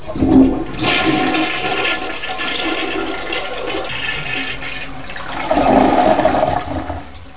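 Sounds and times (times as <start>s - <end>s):
toilet flush: 0.0s - 7.3s.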